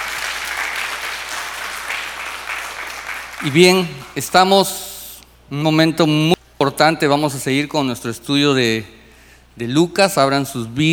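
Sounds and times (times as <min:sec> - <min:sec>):
audience applauding in a large room: 0:00.0 - 0:04.2
speech: 0:03.4 - 0:04.9, 0:05.5 - 0:09.0, 0:09.6 - 0:10.9.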